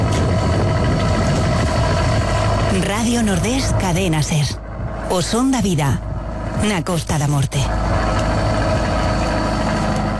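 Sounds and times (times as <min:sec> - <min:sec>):
boat engine rumbling as the vessel leaves the harbour at Fisterra at night: 0:00.0 - 0:10.1
speech: 0:03.0 - 0:08.0.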